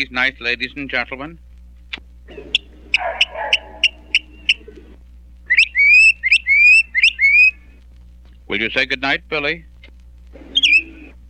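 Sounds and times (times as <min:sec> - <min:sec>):
speech: 0:00.0 - 0:01.5, 0:08.5 - 0:09.7
low steady hum: 0:00.0 - 0:11.2
mockingbird call: 0:02.3 - 0:04.9, 0:05.5 - 0:07.7, 0:10.4 - 0:11.2.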